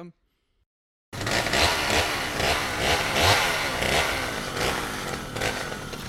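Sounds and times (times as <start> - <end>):
speech: 0.0 - 0.2
chainsaw engine revving: 1.2 - 6.0.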